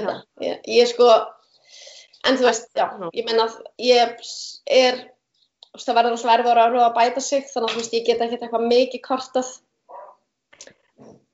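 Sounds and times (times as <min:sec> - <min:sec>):
speech: 0:00.0 - 0:01.3, 0:02.2 - 0:05.2, 0:05.8 - 0:09.7
dog letting out short whiny yelps: 0:09.9 - 0:10.2.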